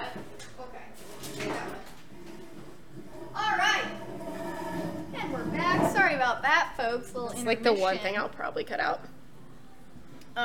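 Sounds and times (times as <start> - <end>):
office chair being swapped out for another chair: 0.0 - 6.2
speech: 6.9 - 9.1.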